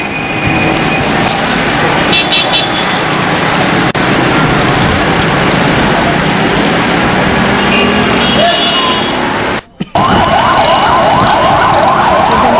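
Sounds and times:
ambulance sirens wailing: 0.0 - 12.5
street traffic noise: 0.0 - 12.5.

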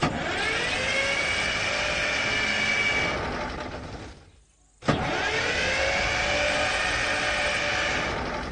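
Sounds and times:
large vehicle engine cranking but failing to start: 0.0 - 4.2, 4.8 - 8.5.

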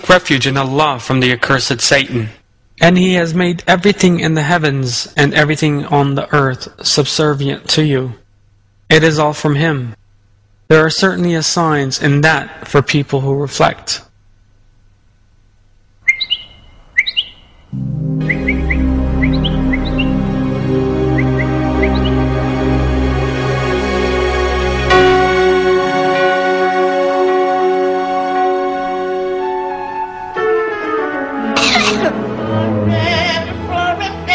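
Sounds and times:
speech: 0.0 - 8.2, 8.9 - 10.0, 10.7 - 14.1
bird chirping and tweeting trills: 16.0 - 22.3
steady musical drone: 17.7 - 34.3.

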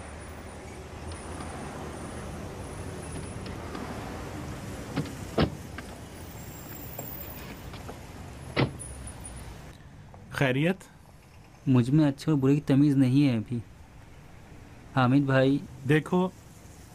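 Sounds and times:
car doors opening and shutting: 3.0 - 6.1, 6.7 - 9.0
speech: 10.4 - 11.0, 11.6 - 13.7, 15.0 - 16.4.

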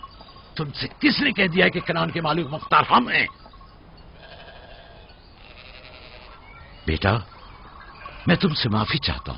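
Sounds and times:
speech: 0.6 - 3.4, 6.9 - 7.3, 8.2 - 9.3
flock of sheep bleating in farm fields in Canaan: 4.2 - 6.5, 8.0 - 8.6.

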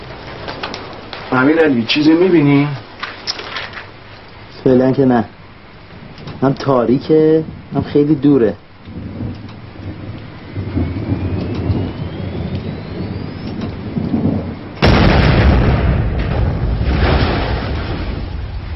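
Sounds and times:
low steady rumble: 0.0 - 18.7
speech: 1.3 - 2.8, 4.7 - 5.4, 6.4 - 9.0
distant shelling blast: 10.7 - 18.7.

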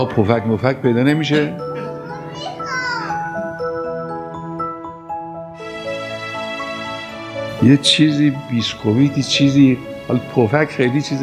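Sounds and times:
speech: 0.0 - 2.6, 7.6 - 11.2
melodic music: 0.0 - 11.2
young child fussing and babbling: 1.8 - 3.3.

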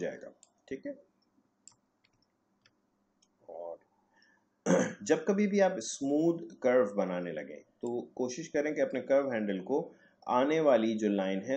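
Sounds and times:
speech: 0.0 - 1.1, 4.7 - 11.5
faint crisp computer mouse clicks: 1.2 - 3.4.

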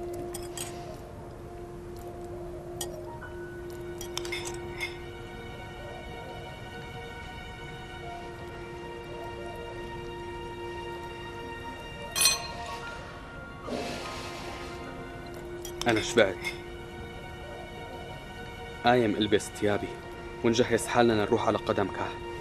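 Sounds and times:
glass clinking: 0.1 - 0.7, 4.0 - 5.1, 12.1 - 12.8, 15.6 - 16.7
speech: 15.9 - 16.6, 18.8 - 22.3.

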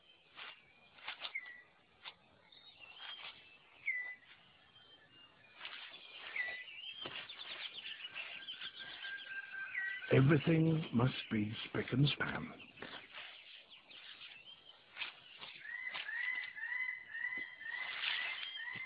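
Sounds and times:
soft forest backdrop: 0.0 - 18.8
thin chirps and whistled calls in the forest: 0.0 - 18.8
rustling and wing flutter of male six-plumed bird of paradise tidying display area: 0.3 - 2.2, 5.6 - 9.2, 12.8 - 16.6, 17.7 - 18.8
speech: 10.1 - 12.7.

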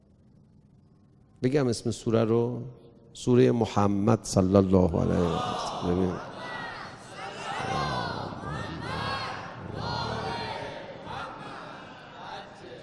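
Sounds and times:
speech: 1.4 - 6.3
large crowd chanting religious salutations in unison: 5.1 - 12.8.

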